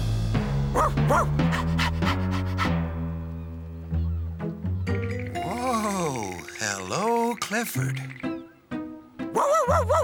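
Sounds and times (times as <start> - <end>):
steady sustained music: 0.0 - 10.0
big dog barking: 0.7 - 2.7, 9.4 - 10.0
speech: 0.8 - 1.4, 7.5 - 8.3.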